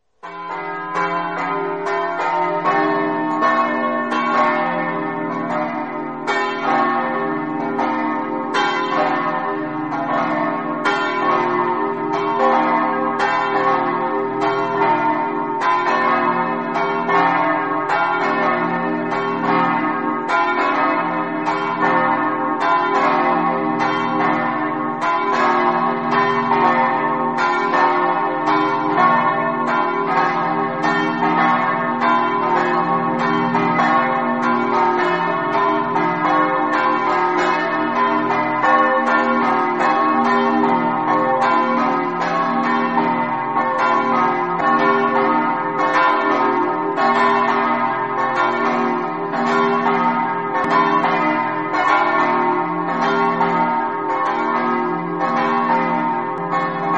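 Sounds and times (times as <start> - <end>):
church bells ringing in Resia: 0.2 - 56.9.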